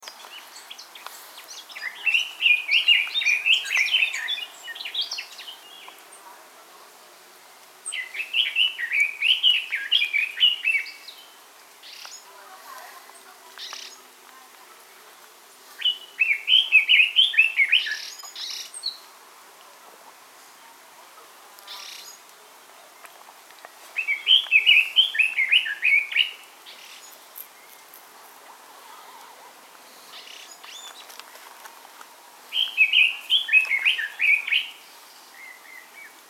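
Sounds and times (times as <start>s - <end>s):
Japanese bush warbler singing in the Euganean Hills: 0.0s - 6.3s, 7.8s - 12.3s, 15.8s - 19.1s, 24.0s - 27.9s, 28.9s - 31.2s, 32.5s - 36.2s.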